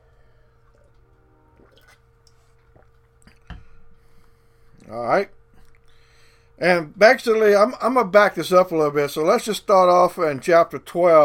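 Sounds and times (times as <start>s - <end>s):
low steady hum: 0.0s - 11.2s
preacher sipping water with soft wet slurps and a gulp: 0.4s - 3.8s, 5.5s - 6.0s
speech: 4.9s - 5.4s, 6.6s - 11.2s.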